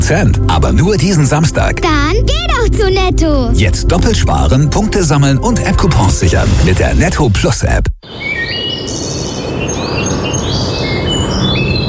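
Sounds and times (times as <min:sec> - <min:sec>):
speech: 0:00.1 - 0:08.3
several birds chirping and tweeting in a forest in Bavaria: 0:08.0 - 0:11.8.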